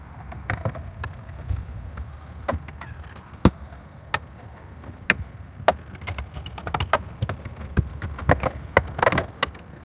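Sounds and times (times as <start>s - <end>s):
skateboard landing on wood ramp: 2.1s - 9.8s.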